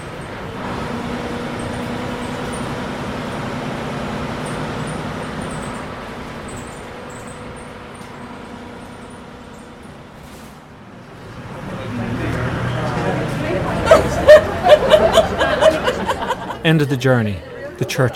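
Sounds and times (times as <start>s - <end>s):
broadband road noise from an old bus: 0.0s - 18.1s
old bus engine droning while driving along a road: 0.0s - 18.1s
laughter: 11.8s - 18.1s
speech: 16.7s - 18.1s.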